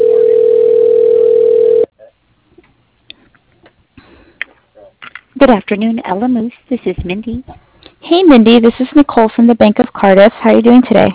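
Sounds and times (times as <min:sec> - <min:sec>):
telephone dial tone: 0:00.0 - 0:01.9
speech: 0:05.4 - 0:11.1.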